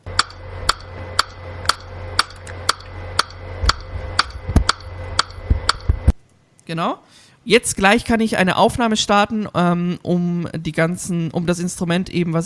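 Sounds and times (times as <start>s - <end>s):
metronome clicks from recording software: 0.0s - 6.0s
speech: 6.7s - 12.4s.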